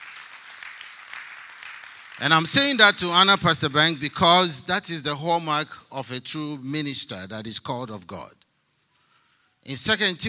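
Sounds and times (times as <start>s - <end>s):
audience clapping hands: 0.0s - 2.8s
speech: 2.2s - 8.4s, 9.6s - 10.2s.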